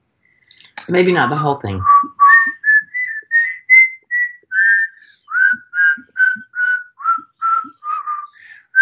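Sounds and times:
speech: 0.9 - 1.9
person whistling a melody: 1.8 - 8.8.

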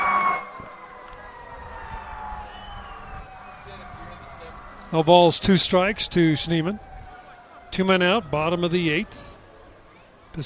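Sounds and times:
fire engine sirens passing a ballpark during a baseball game: 0.0 - 9.4
speech: 4.9 - 6.9, 7.8 - 9.3.

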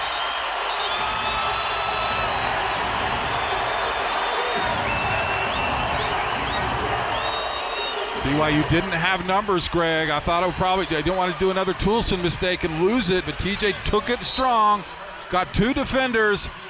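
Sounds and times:
sharp whistles from the arena crowd: 0.0 - 8.2
large basketball arena crowd cheering during a timeout: 0.0 - 16.6
speech: 8.3 - 16.6.

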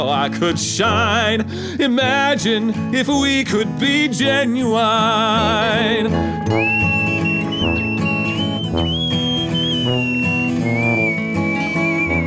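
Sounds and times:
speech: 0.0 - 6.9
instrumental music backing: 3.3 - 12.2
person whistling a wavering melody: 6.2 - 12.2.

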